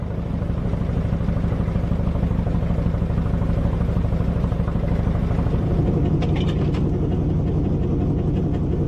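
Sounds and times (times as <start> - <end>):
old passenger boat engine chugging on a lake in Norway: 0.0 - 8.8
faint mechanical clatter: 6.0 - 7.2.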